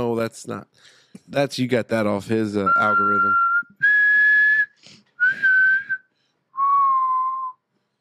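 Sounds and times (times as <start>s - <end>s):
speech: 0.0s - 3.5s
person whistling a short tune by mouth using inward whistling: 2.7s - 7.7s.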